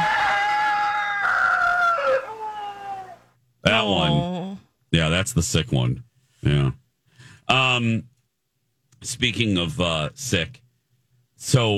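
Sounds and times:
rooster crowing: 0.0s - 3.2s
speech: 3.8s - 4.3s, 4.9s - 6.8s, 7.5s - 8.1s, 9.0s - 10.6s, 11.4s - 11.7s.

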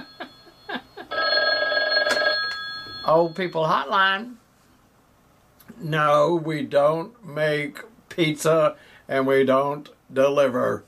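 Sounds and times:
telephone ringing: 0.0s - 4.0s
speech: 3.1s - 4.4s, 5.8s - 10.8s.

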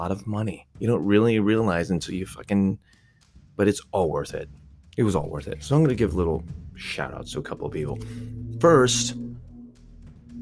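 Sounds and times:
speech: 0.0s - 3.0s, 3.6s - 9.2s
low droning hum: 4.4s - 10.3s
faint road noise: 5.0s - 10.3s
large truck engine rumble outside: 5.0s - 10.3s.

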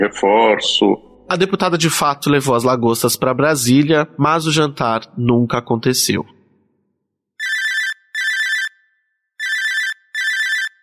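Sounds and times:
speech: 0.0s - 6.4s
telephone ringing with bright electronic warble: 7.4s - 10.8s.

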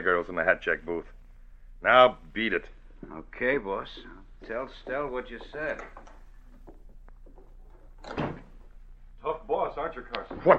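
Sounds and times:
speech: 0.0s - 1.2s, 1.8s - 6.1s, 8.0s - 8.3s, 9.7s - 10.5s
door opening and shutting: 4.0s - 8.8s.

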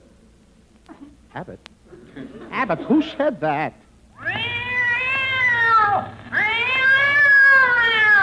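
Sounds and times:
speech: 1.3s - 4.4s
cat yowling after its tail is stepped on: 4.2s - 8.2s.

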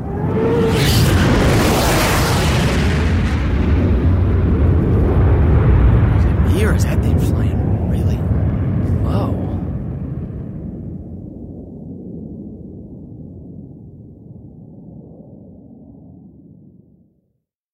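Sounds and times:
fighter jet roaring overhead: 0.0s - 13.0s.

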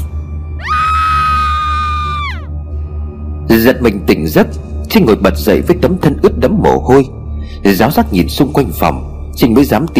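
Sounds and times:
woman screaming in terror: 0.6s - 2.5s
speech: 3.5s - 9.9s.

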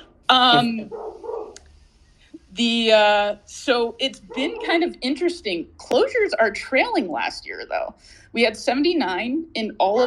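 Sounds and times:
speech: 0.3s - 1.1s, 2.5s - 10.0s
dog barking: 0.8s - 1.6s, 4.2s - 4.8s.

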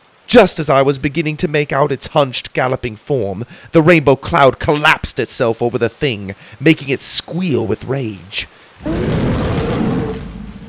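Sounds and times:
speech: 0.3s - 9.2s
rumbling thunder: 8.8s - 10.6s.

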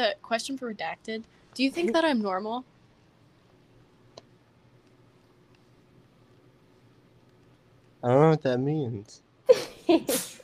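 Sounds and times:
speech: 0.0s - 2.7s, 8.0s - 10.4s
person sneezing: 9.5s - 10.4s.

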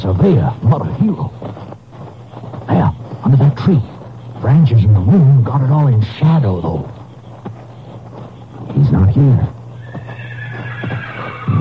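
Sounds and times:
speech: 0.0s - 1.6s, 3.3s - 7.0s, 8.8s - 9.6s
horse hooves clopping: 0.0s - 11.5s
steady low hum: 0.0s - 11.5s
horse whinnying: 9.8s - 11.5s.

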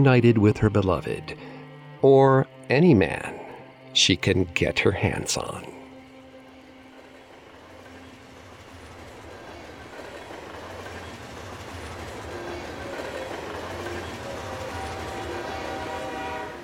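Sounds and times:
speech: 0.0s - 5.8s
train travelling to Sha Tin in Hong Kong rumbling along the rails: 0.0s - 16.6s
rhythmic rattling of the train cars: 5.2s - 16.6s.

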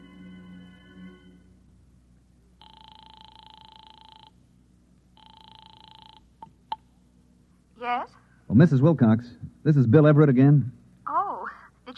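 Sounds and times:
clicks as the telephone line is picked up: 2.6s - 4.4s, 5.2s - 6.9s
telephone ringing through the receiver on a call from a phone booth: 2.6s - 4.4s, 5.2s - 6.6s
speech: 7.8s - 10.8s.

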